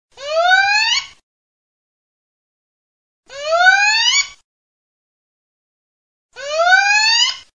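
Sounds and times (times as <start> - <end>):
little owl: 0.2 - 1.2, 3.3 - 4.4, 6.4 - 7.5.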